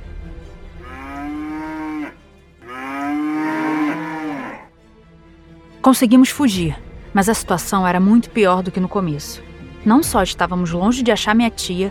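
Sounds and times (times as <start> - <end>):
cows mooing as a herd enters: 0.8 - 4.7
speech: 5.8 - 11.9.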